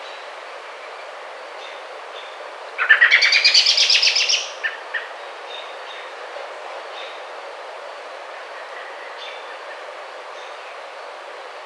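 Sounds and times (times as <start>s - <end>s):
American robin call: 2.8s - 5.1s.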